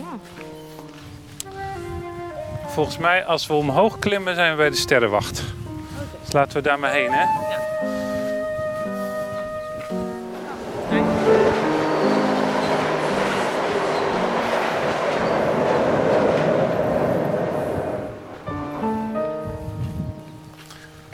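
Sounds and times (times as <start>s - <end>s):
train rumbling across a railway bridge: 1.5s - 20.6s
speech: 2.8s - 5.6s, 6.3s - 7.5s
steady tonal hums: 7.0s - 19.8s
rattling clatter of train on railway bridge: 10.6s - 18.9s.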